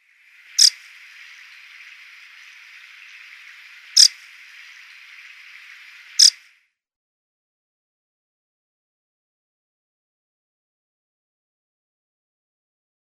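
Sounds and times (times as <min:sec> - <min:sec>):
Red-breasted Flycatcher calls: 0:00.3 - 0:06.4.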